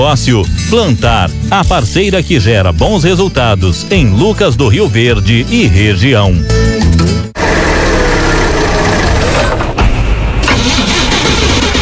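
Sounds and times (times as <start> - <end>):
speech: 0.0 - 7.1
car engine cranking and sputtering failing to start: 6.9 - 11.8.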